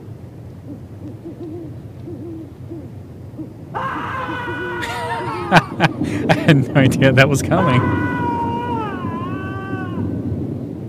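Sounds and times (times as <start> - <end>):
owl hooting: 0.6 - 5.7, 7.8 - 10.2
laughter: 3.8 - 8.9
speech: 5.5 - 8.2.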